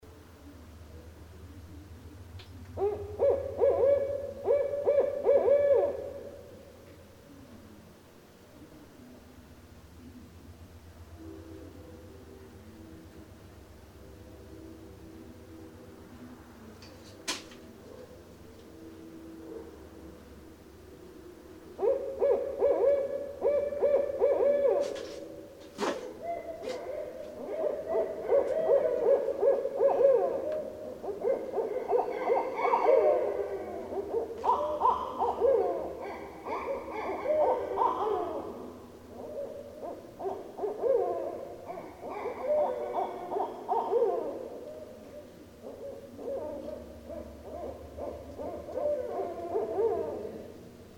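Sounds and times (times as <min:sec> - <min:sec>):
barred owl calling: 0:01.5 - 0:07.7, 0:21.7 - 0:50.7.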